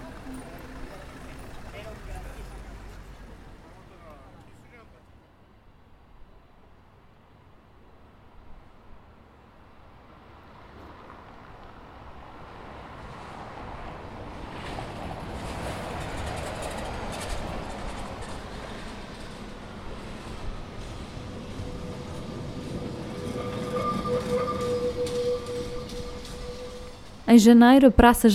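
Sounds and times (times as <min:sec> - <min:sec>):
tram rumbling past through a city square: 0:00.0 - 0:28.3
thin metallic squeal of a tram: 0:21.2 - 0:27.3
speech: 0:27.3 - 0:28.3.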